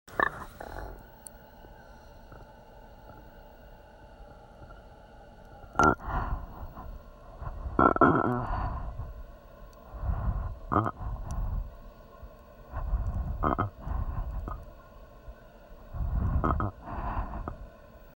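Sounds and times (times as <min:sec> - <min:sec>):
gurgling: 0:05.8 - 0:06.4, 0:07.5 - 0:09.0, 0:10.7 - 0:11.4, 0:12.8 - 0:14.6, 0:16.0 - 0:17.3.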